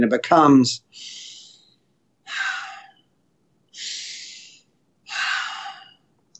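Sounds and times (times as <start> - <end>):
speech: 0.0 - 1.2
slow nasal breathing: 0.9 - 3.1, 3.7 - 6.2.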